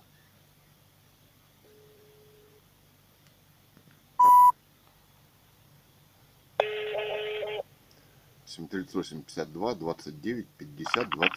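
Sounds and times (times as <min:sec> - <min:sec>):
telephone dialing tones while placing a call: 0:04.2 - 0:04.5, 0:06.6 - 0:07.6
speech: 0:08.6 - 0:11.3.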